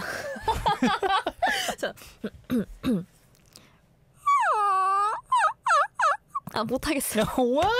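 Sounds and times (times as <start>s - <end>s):
speech: 0.8s - 3.1s, 6.6s - 7.7s
woman imitating a crying Maltese puppy with yelps, whines and whimpers: 4.2s - 6.6s.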